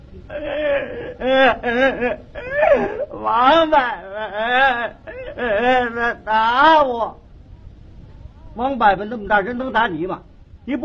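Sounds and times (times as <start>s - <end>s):
speech: 0.2s - 7.2s, 8.6s - 10.8s
child crying in wails and whimpers: 0.3s - 7.2s.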